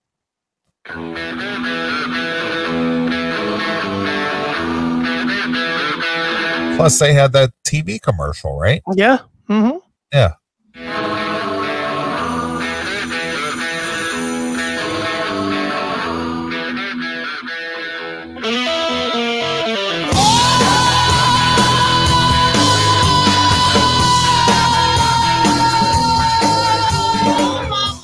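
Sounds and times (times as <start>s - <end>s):
speech: 0.9s - 2.9s, 6.8s - 10.4s
hard rock song with full band: 0.9s - 6.8s, 10.8s - 28.0s
gritty distorted electric guitar riff: 0.9s - 6.9s, 10.2s - 28.0s
rock singer's high-pitched scream in song: 20.1s - 28.0s.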